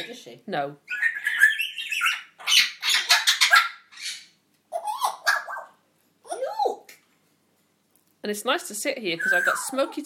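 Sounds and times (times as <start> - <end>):
speech: 0.0 - 1.0, 8.2 - 10.0
pet parrots squawking in harsh screeches: 0.9 - 5.8, 9.2 - 10.0.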